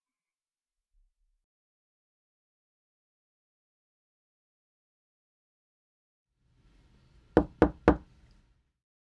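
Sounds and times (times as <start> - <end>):
knocking on an apartment door: 7.4 - 8.1.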